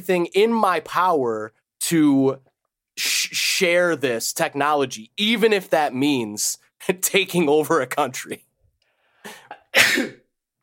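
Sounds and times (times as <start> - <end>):
speech: 0.0 - 8.5, 9.2 - 10.2
loud sneeze: 9.3 - 10.2.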